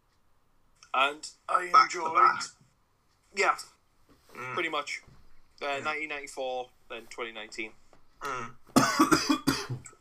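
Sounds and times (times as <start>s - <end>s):
speech: 1.0s - 2.6s, 3.3s - 3.8s, 4.4s - 9.4s
quiet throaty voiced sounds: 4.3s - 5.0s, 8.2s - 9.0s
bad harsh cough: 8.7s - 9.9s.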